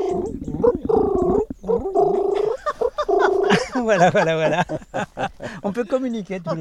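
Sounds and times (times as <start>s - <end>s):
person imitating a pigeon's cooing: 0.0s - 3.5s
laughter: 2.1s - 5.8s, 6.4s - 6.5s
speech: 3.8s - 6.5s.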